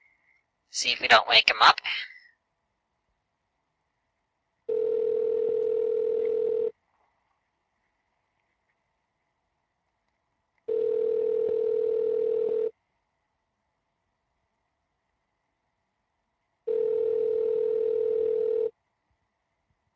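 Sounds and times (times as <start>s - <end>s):
speech: 0.7s - 2.1s
ringback tones from an outgoing phone call: 4.7s - 6.7s, 10.7s - 12.7s, 16.7s - 18.7s.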